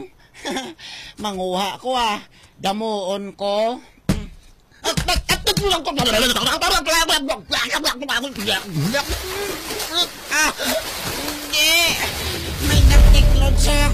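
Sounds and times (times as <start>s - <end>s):
speech: 0.0s - 3.9s, 5.0s - 13.9s
water splashing and flowing in a farm field: 8.3s - 13.5s.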